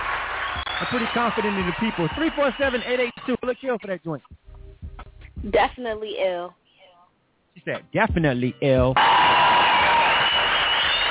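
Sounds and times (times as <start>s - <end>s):
crowd booing: 0.0s - 3.2s, 9.0s - 11.1s
speech: 0.9s - 4.4s, 5.4s - 6.6s, 7.6s - 9.4s.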